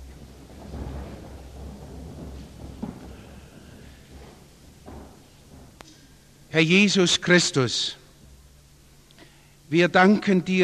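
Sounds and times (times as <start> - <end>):
creaks and thumps: 0.0 - 6.4
audience standing up from chairs to pray: 0.0 - 6.5
speech: 6.5 - 8.0, 9.7 - 10.6.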